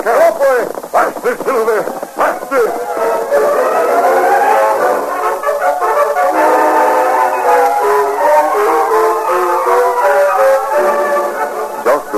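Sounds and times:
speech: 0:00.0 - 0:02.8
steam express train whistle: 0:02.7 - 0:12.0.

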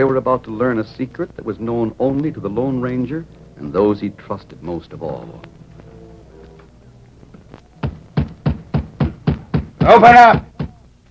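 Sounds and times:
speech: 0:00.0 - 0:05.6, 0:09.8 - 0:10.5
fists hammering on the wooden door of a cabin shack: 0:07.8 - 0:10.8.

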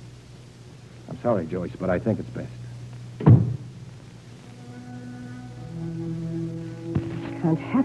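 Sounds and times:
low steady hum of sustained tones: 0:00.0 - 0:07.8
speech: 0:01.2 - 0:02.6, 0:07.4 - 0:07.8
door closing as a man walks out of a room: 0:03.2 - 0:03.7.

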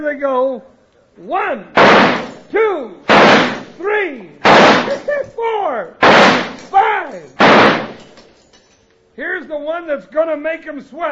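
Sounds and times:
speech: 0:00.0 - 0:08.2, 0:09.2 - 0:11.0
gunshots during target shooting at thrown objects: 0:01.8 - 0:02.4, 0:03.1 - 0:03.8, 0:04.4 - 0:05.2, 0:06.0 - 0:06.8, 0:07.4 - 0:08.2.

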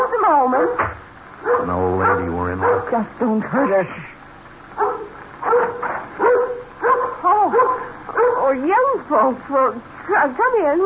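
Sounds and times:
dog barking with sharp yelping barks: 0:00.5 - 0:03.0, 0:04.8 - 0:08.6
speech: 0:01.7 - 0:04.1, 0:08.5 - 0:10.8.

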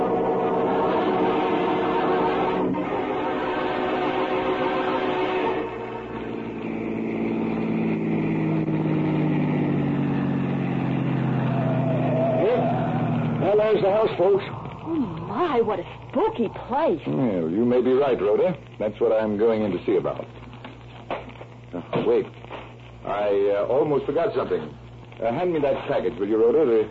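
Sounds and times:
car engine driving and accelerating: 0:00.0 - 0:16.6
speech: 0:13.8 - 0:20.4, 0:22.0 - 0:22.4, 0:23.1 - 0:26.8.

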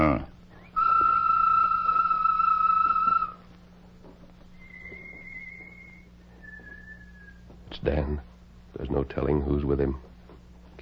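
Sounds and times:
low hum: 0:00.0 - 0:10.8
person whistling a bird call as a signal: 0:00.6 - 0:03.4, 0:04.6 - 0:07.4
speech: 0:07.8 - 0:08.3, 0:09.0 - 0:10.1.

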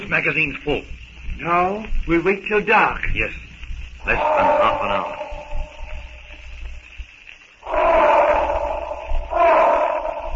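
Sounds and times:
speech: 0:00.1 - 0:05.2
elephant bellowing: 0:04.0 - 0:06.1, 0:07.6 - 0:10.3.

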